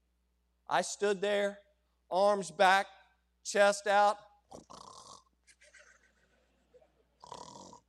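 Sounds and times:
speech: 0:00.7 - 0:04.9
person imitating snoring: 0:04.5 - 0:05.3, 0:07.2 - 0:07.8.

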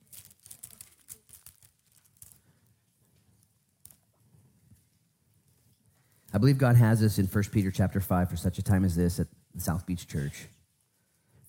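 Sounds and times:
many paper pages being turned at once: 0:00.0 - 0:02.6
speech: 0:06.4 - 0:10.6.

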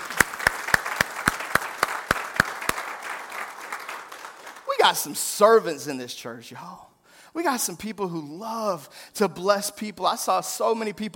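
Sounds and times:
church congregation applauding: 0:00.0 - 0:05.3
speech: 0:04.8 - 0:11.1.

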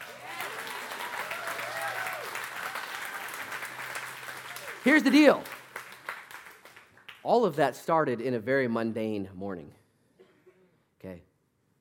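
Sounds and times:
audience applause: 0:00.0 - 0:07.2
speech: 0:04.8 - 0:05.6, 0:07.2 - 0:09.8, 0:11.0 - 0:11.3.

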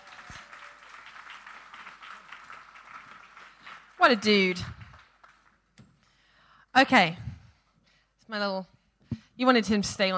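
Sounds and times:
crowd at a meeting applauding: 0:00.0 - 0:05.7
speech: 0:04.0 - 0:04.8, 0:06.8 - 0:07.2, 0:08.3 - 0:08.7, 0:09.4 - 0:10.1.

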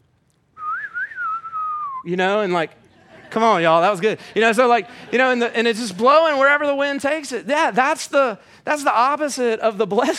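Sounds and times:
person whistling a Western movie tune imitation: 0:00.6 - 0:02.1
speech: 0:02.0 - 0:10.1
laughter: 0:02.9 - 0:06.1.

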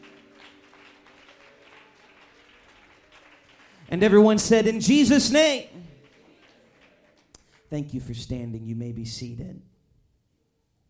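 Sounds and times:
audience clapping hands: 0:00.0 - 0:07.7
speech: 0:03.9 - 0:05.8, 0:07.7 - 0:09.7.

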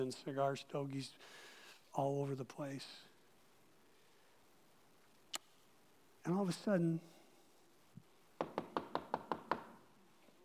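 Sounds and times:
speech: 0:00.0 - 0:03.1, 0:06.2 - 0:07.2
knocking on a house door: 0:08.4 - 0:09.7.

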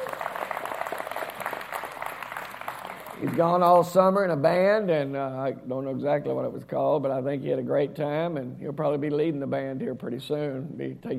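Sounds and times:
crowd applauding to welcome someone back: 0:00.0 - 0:03.9
speech: 0:03.2 - 0:11.1.

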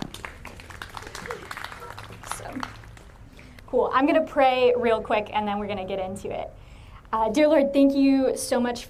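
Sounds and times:
audience applause: 0:00.0 - 0:03.2
speech: 0:03.7 - 0:08.8.

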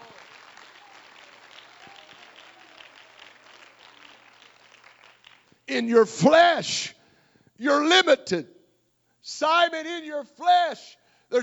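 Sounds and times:
audience clapping in praise: 0:00.0 - 0:06.4
speech: 0:05.7 - 0:07.0, 0:07.6 - 0:08.6, 0:09.2 - 0:11.4.

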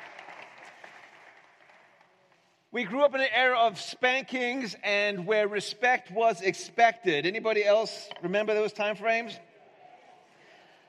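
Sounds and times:
audience clapping: 0:00.0 - 0:02.5
speech: 0:02.7 - 0:09.5.

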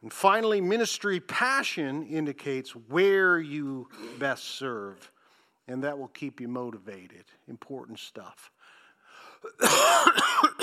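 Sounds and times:
speech: 0:00.1 - 0:05.1, 0:05.7 - 0:08.6, 0:09.4 - 0:10.6
person coughing during a sermon: 0:03.9 - 0:04.4, 0:09.4 - 0:10.6.

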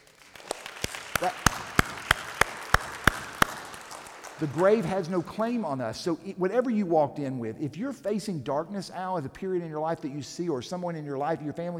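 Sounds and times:
audience clapping in unison: 0:00.0 - 0:05.9
speech: 0:01.2 - 0:01.8, 0:04.4 - 0:11.7.

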